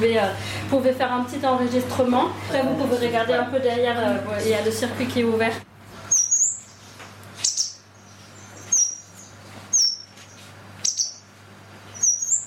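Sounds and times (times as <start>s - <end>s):
speech: 0.0s - 5.7s
blue tit chirping: 6.1s - 11.3s, 11.9s - 12.4s.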